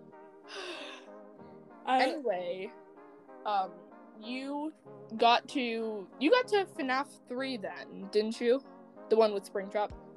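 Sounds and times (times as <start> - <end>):
heavy out-of-breath breathing while pacing: 0.5 - 1.2
speech: 1.9 - 2.8, 3.4 - 10.0.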